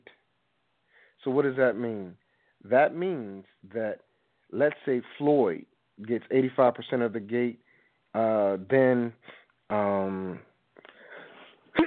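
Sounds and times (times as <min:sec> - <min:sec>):
speech: 0:01.2 - 0:07.6, 0:08.2 - 0:10.5
person sneezing: 0:11.0 - 0:11.8.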